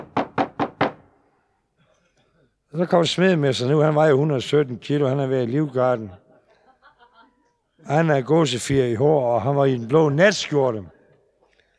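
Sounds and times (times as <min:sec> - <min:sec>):
firm knocking on a door at night: 0:00.0 - 0:01.1
speech: 0:02.7 - 0:06.2, 0:07.8 - 0:11.0
laughter: 0:05.2 - 0:07.6.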